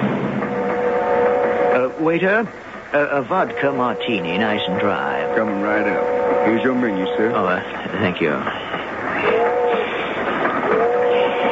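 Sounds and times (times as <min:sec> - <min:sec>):
train rolling along the tracks: 0:00.0 - 0:11.5
speech: 0:02.0 - 0:09.5.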